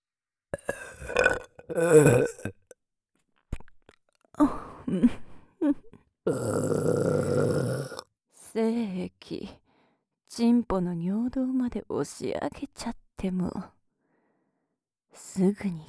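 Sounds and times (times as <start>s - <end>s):
long drawn-out rumbling belch: 0.6s - 2.6s, 6.3s - 8.0s
loud burps: 0.6s - 2.8s, 6.3s - 8.0s
speech: 1.7s - 2.6s, 4.9s - 6.7s, 8.6s - 9.6s, 10.4s - 13.8s, 15.2s - 15.8s.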